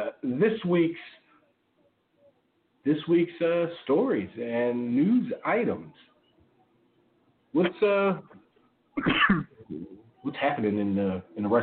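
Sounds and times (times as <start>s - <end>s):
speech: 0.4s - 1.2s, 2.8s - 6.1s, 7.6s - 8.4s, 9.0s - 11.6s
person coughing: 9.0s - 9.9s
person clearing throat: 9.0s - 10.0s.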